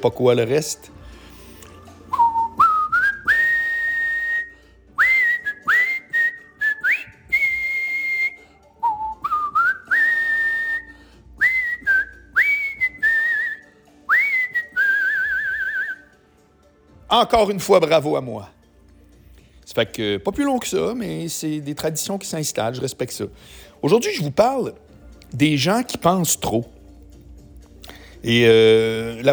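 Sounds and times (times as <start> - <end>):
speech: 0.0 - 1.1, 17.2 - 18.6, 19.7 - 26.8, 28.2 - 29.3
person whistling an old TV theme tune: 1.8 - 16.1.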